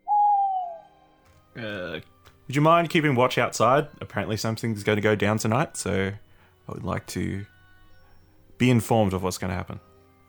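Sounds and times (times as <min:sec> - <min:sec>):
owl hooting: 0:00.0 - 0:01.0
speech: 0:01.6 - 0:07.5, 0:08.6 - 0:09.9.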